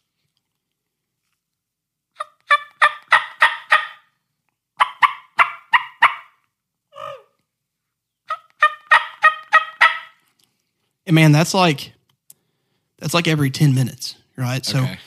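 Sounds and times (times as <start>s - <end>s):
turkey call raspy stepped yelps: 2.2s - 4.1s, 4.8s - 7.4s, 8.3s - 10.2s
turkey call rolling purr: 6.9s - 7.3s
speech: 11.1s - 12.0s, 13.0s - 15.0s.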